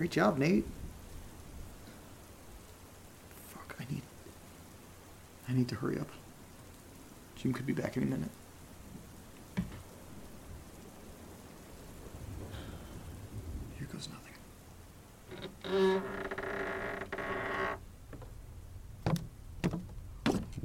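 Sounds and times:
speech: 0:00.0 - 0:00.8, 0:05.5 - 0:06.2, 0:07.4 - 0:08.4
steady rainy stormy hiss: 0:00.0 - 0:20.6
soft thuds: 0:09.5 - 0:09.9, 0:19.0 - 0:20.6
creaky wooden staircase groaning under weight: 0:09.6 - 0:09.9, 0:15.3 - 0:18.4, 0:19.0 - 0:20.6.

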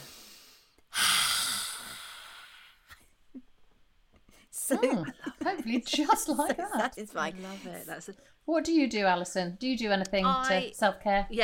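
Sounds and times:
long airy exhale during a breathing exercise lying on a mat: 0:00.0 - 0:02.9
laughter: 0:04.7 - 0:07.9
speech: 0:04.7 - 0:11.4.

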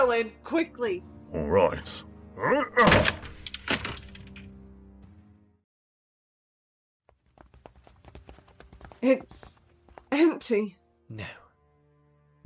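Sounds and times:
speech: 0:00.0 - 0:03.3, 0:09.0 - 0:09.5, 0:10.1 - 0:11.4
wooden door being broken down: 0:02.8 - 0:04.2
faint footsteps: 0:07.1 - 0:10.3.

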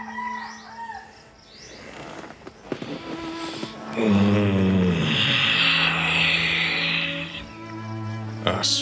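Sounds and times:
rooster crowing before sunrise: 0:00.0 - 0:01.2, 0:05.0 - 0:07.5
speech: 0:04.0 - 0:05.1, 0:08.6 - 0:08.8.

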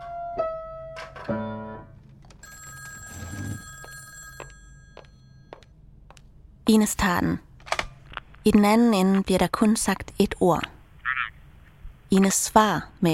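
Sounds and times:
speech: 0:01.3 - 0:01.6, 0:06.7 - 0:07.5, 0:08.4 - 0:10.7, 0:12.1 - 0:13.1
telephone bell ringing: 0:02.4 - 0:05.7.

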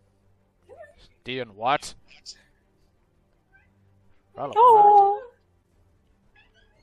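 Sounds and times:
speech: 0:01.0 - 0:02.4, 0:04.4 - 0:05.2
cat meowing: 0:06.4 - 0:06.8.

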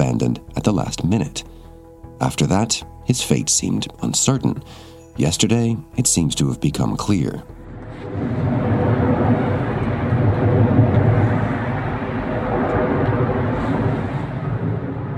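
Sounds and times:
speech: 0:00.0 - 0:01.6, 0:02.2 - 0:08.5
loud continuous rumbling roar of a private jet plane crashing: 0:07.7 - 0:15.1.

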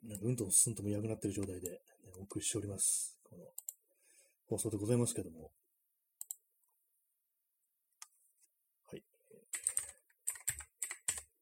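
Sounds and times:
speech: 0:00.0 - 0:03.4, 0:04.5 - 0:05.6
computer keyboard typing: 0:06.2 - 0:06.4, 0:09.5 - 0:11.3.

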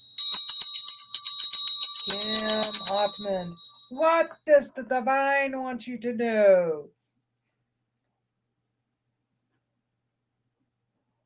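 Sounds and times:
bright bell ringing: 0:00.0 - 0:04.3
speech: 0:02.1 - 0:07.0.

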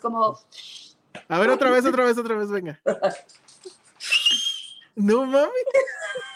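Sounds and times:
speech: 0:00.0 - 0:03.8, 0:05.0 - 0:06.3
person trying to whistle: 0:04.0 - 0:05.0.

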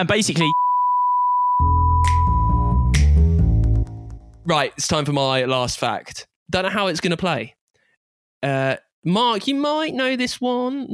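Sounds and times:
speech: 0:00.0 - 0:00.6, 0:04.5 - 0:07.6, 0:08.4 - 0:10.9
high-pitched censor bleep tone: 0:00.5 - 0:03.0
loud busy music: 0:01.6 - 0:04.5.

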